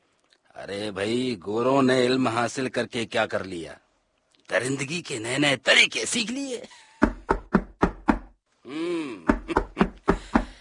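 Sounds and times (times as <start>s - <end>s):
speech: 0.6s - 3.8s, 4.5s - 6.8s
loud rapid knocking on a door: 7.0s - 8.4s, 9.3s - 10.5s
drawn-out vocal call: 8.6s - 9.8s.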